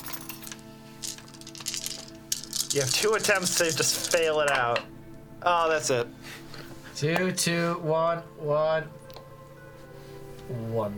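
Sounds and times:
several dice clattering and tumbling across a hard surface: 0.1s - 4.8s
speech: 2.8s - 6.4s, 7.0s - 9.0s, 10.5s - 10.9s.

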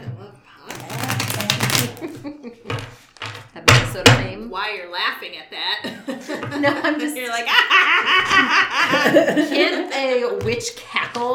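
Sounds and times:
tarot cards being shuffled: 0.7s - 2.2s
speech: 4.4s - 11.3s
laughter: 5.8s - 10.0s.

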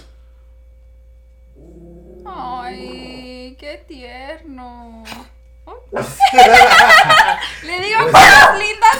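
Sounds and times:
steady low electrical hum: 0.0s - 8.9s
speech: 5.9s - 6.9s
laughter: 6.0s - 8.9s
dog giving a short throaty bark: 8.1s - 8.8s.

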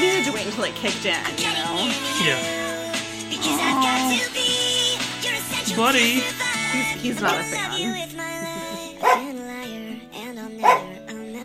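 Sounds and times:
speech: 0.6s - 2.6s, 3.3s - 4.8s, 5.7s - 8.3s
female dog whining: 2.1s - 4.3s, 7.8s - 9.3s, 10.6s - 11.0s
laughter: 3.4s - 4.6s, 5.7s - 9.2s
female dog barking: 8.6s - 9.3s, 10.6s - 11.0s.

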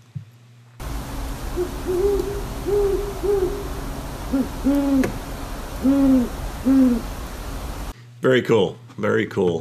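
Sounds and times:
pair of owls hooting back and forth: 0.8s - 7.9s
steady hiss: 0.8s - 8.0s
speech: 1.6s - 3.5s, 4.3s - 5.2s, 8.2s - 9.6s.

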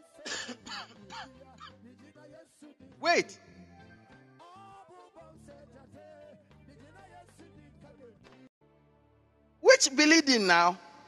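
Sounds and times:
person coughing harsh raspy bursts: 0.3s - 1.7s
speech: 0.8s - 3.5s, 9.8s - 10.9s.

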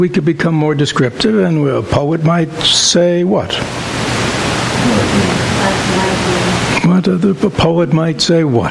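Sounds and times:
speech: 0.0s - 4.0s, 4.8s - 8.6s
steady dense rain pattering: 3.6s - 6.9s.

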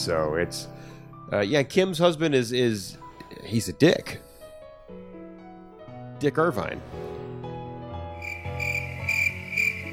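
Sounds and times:
speech: 0.0s - 4.3s, 6.2s - 7.1s
crickets chirping: 8.2s - 9.9s.

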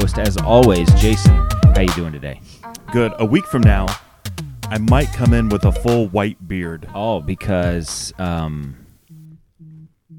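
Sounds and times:
speech: 0.1s - 4.1s, 4.7s - 8.8s
muted phone vibrating on a table: 9.1s - 10.1s.

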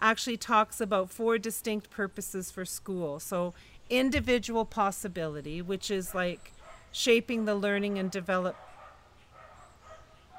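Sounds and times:
speech: 0.1s - 8.7s
faint dogs barking heard from indoors: 5.2s - 10.3s.

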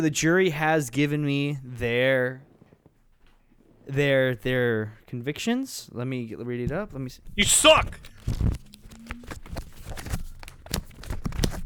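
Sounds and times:
speech: 0.0s - 2.5s, 3.9s - 8.5s
paper rustling and tearing as a multi-layered paper envelope is unwrapped: 7.6s - 11.6s.

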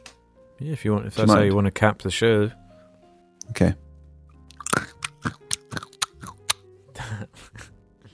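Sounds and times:
speech: 0.6s - 2.6s, 3.5s - 3.8s
Smarties candies crunching: 4.5s - 6.6s
chewing: 4.5s - 6.6s.

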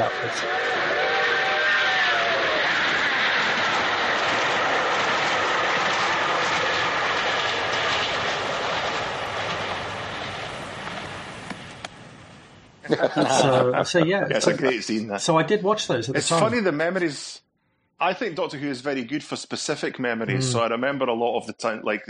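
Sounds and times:
speech: 0.0s - 0.8s, 12.9s - 17.4s, 18.0s - 22.0s
train rumbling along railway tracks: 0.0s - 12.5s
laughter: 12.8s - 15.0s, 20.3s - 20.6s.

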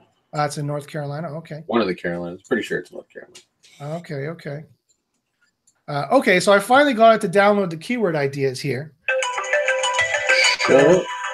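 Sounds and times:
speech: 0.3s - 4.8s, 5.9s - 9.0s, 10.7s - 11.1s
phone ringtone with electronic melody: 9.1s - 11.3s.

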